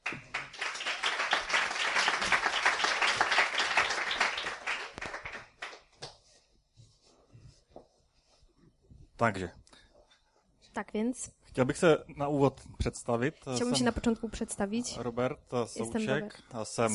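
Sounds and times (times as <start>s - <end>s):
crowd applauding: 0.0s - 5.8s
quiet shuffling: 6.0s - 9.2s
speech: 9.2s - 9.6s, 10.8s - 16.9s.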